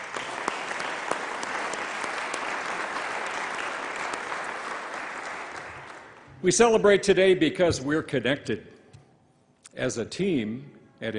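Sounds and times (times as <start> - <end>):
audience applause: 0.0 - 6.3
speech: 6.4 - 8.8, 9.8 - 11.1.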